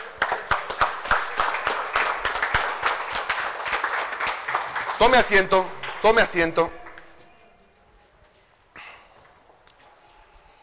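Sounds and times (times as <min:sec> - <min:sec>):
church congregation applauding during a marriage workshop session: 0:00.0 - 0:06.4
speech: 0:05.0 - 0:06.8.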